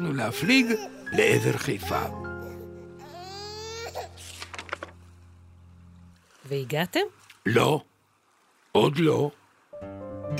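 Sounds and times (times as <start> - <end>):
speech: 0.0 - 2.2, 6.5 - 7.9, 8.7 - 10.3
baby screaming and crying: 0.0 - 4.4.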